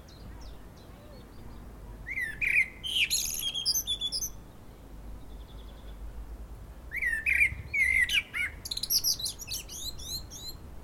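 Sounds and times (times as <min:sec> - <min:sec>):
Common blackbird Turdus merula singing mellow warbled whistles: 0:00.0 - 0:04.4, 0:06.9 - 0:10.6.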